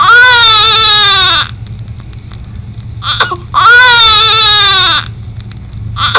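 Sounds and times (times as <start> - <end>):
hungry baby crying: 0.0 - 1.5, 3.0 - 5.1.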